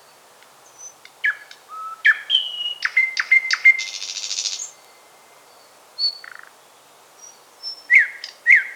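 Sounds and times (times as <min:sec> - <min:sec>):
thrush nightingale singing: 0:00.7 - 0:05.1, 0:07.2 - 0:08.7.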